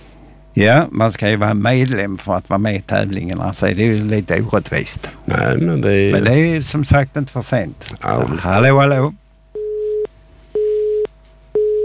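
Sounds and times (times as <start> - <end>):
low constant hum: 0.0 - 11.8
speech: 0.6 - 9.2
telephone busy tone after a caller hung up: 9.6 - 11.8.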